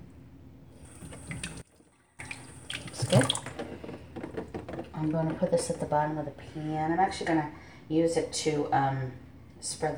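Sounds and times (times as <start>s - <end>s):
tap water running over a sprig of fresh sage: 0.7s - 4.9s
speech: 5.0s - 9.9s.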